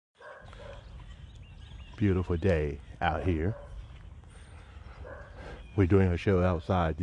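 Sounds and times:
dog barking faintly outdoors: 0:00.2 - 0:01.0, 0:03.1 - 0:03.8, 0:05.0 - 0:05.5
speech: 0:02.0 - 0:03.7, 0:05.8 - 0:07.0.

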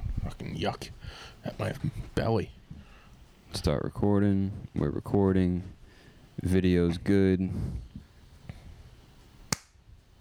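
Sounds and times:
speech: 0:00.3 - 0:02.6, 0:03.5 - 0:05.8, 0:06.4 - 0:07.9
single sharp hand clap: 0:09.5 - 0:09.8.

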